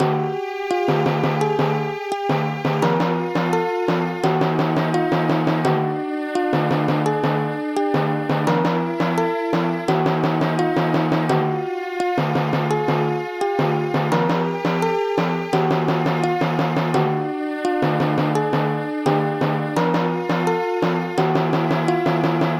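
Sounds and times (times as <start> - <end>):
suspense music: 0.0 - 22.5.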